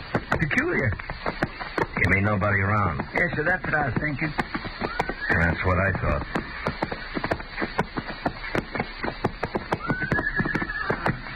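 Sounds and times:
hooves of saddled horses clip-clopping down a street: 0.0s - 11.3s
speech: 0.4s - 4.7s, 5.3s - 6.4s
horse whinnying: 4.8s - 6.3s, 9.6s - 11.3s.

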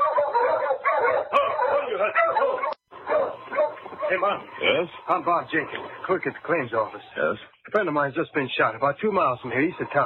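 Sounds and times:
team of sled dogs barking and yipping on a town's main street at night: 0.0s - 7.4s
speech: 2.0s - 2.8s, 4.1s - 10.0s.

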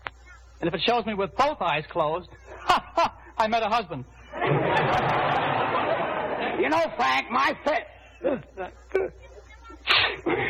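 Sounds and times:
speech: 0.6s - 5.4s, 6.6s - 9.2s
laughter: 2.5s - 3.4s, 4.2s - 10.4s
person sneezing: 9.9s - 10.4s.

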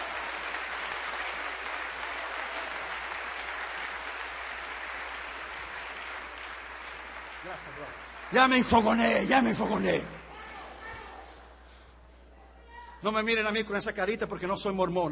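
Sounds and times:
crowd applauding: 0.0s - 10.3s
speech: 7.5s - 10.2s, 13.0s - 15.1s.

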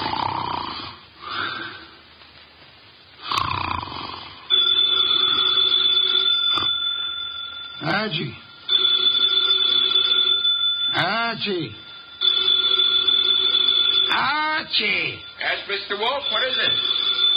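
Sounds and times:
loud nasal snoring: 0.0s - 1.7s, 3.2s - 4.4s
telephone bell ringing: 4.5s - 17.3s
man calling out: 7.8s - 8.4s, 10.9s - 11.8s, 14.1s - 16.8s
speech: 8.0s - 8.4s, 11.3s - 11.8s, 14.2s - 17.3s.

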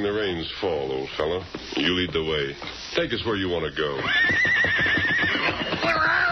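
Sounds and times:
speech: 0.0s - 6.2s
horse whinnying in a shrill neigh: 3.9s - 6.2s.

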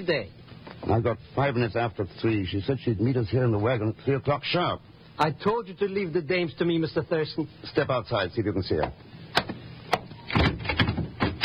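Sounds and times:
speech: 0.0s - 9.1s
stuck locked door being pushed and jiggled: 10.3s - 11.4s.

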